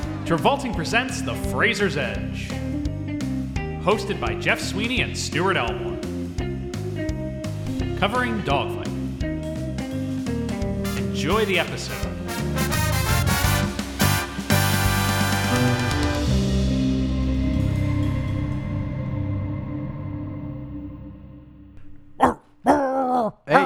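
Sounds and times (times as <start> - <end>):
music: 0.0 - 22.2
speech: 0.3 - 3.0, 3.8 - 6.1, 8.0 - 8.8, 11.2 - 12.1
person imitating a growling barking dog: 22.2 - 23.6.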